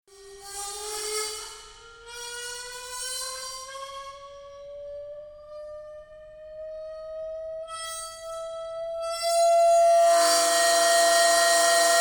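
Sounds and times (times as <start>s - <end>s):
Sabian 16in crash cymbal with 600 640hz sweep: 10.0s - 12.0s.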